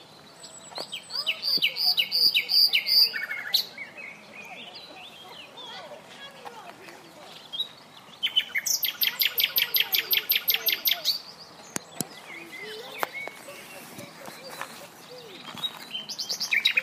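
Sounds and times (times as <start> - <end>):
Common nightingale Luscinia megarhynchos singing: 0.0 - 5.7, 7.3 - 16.8.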